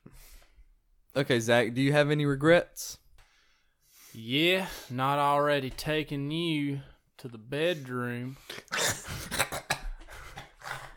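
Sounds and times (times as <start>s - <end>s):
speech: 1.2s - 3.0s, 4.2s - 9.4s
person coughing with something caught in the throat: 8.4s - 10.9s
throat clearing: 8.5s - 10.9s.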